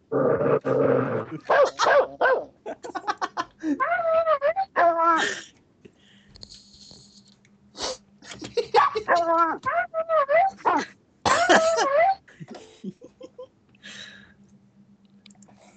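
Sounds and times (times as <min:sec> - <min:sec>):
dog growling and snarling: 0:00.0 - 0:02.2, 0:09.0 - 0:09.9
laughter: 0:01.3 - 0:05.4, 0:08.2 - 0:09.7, 0:10.4 - 0:13.5
dog whining: 0:03.8 - 0:05.2, 0:08.8 - 0:10.9, 0:11.5 - 0:12.2.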